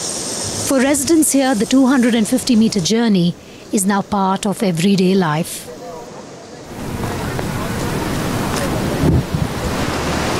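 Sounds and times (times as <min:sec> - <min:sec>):
rushing swollen river water: 0:00.0 - 0:10.3
speech: 0:00.7 - 0:05.8.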